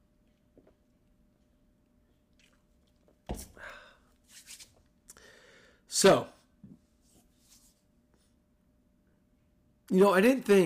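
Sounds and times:
wet sipping and swallowing of beer: 2.2 - 3.3
speech: 6.0 - 6.3, 9.9 - 10.6.

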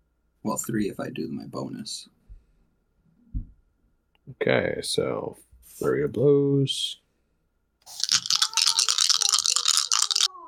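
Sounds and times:
speech: 0.4 - 2.2, 4.3 - 7.0, 7.9 - 8.1
dice rattling and crunching as they're rolled: 7.9 - 10.3.

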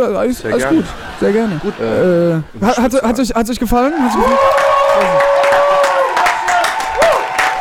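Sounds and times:
speech: 0.0 - 5.3
laughter: 0.5 - 2.5
live crowd roaring and cheering: 3.9 - 7.5
scattered clapping: 4.4 - 7.5.

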